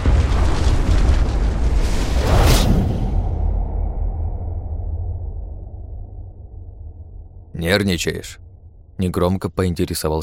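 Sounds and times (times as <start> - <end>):
explosion with a burst of fire: 0.0 - 4.4
speech: 7.7 - 10.2.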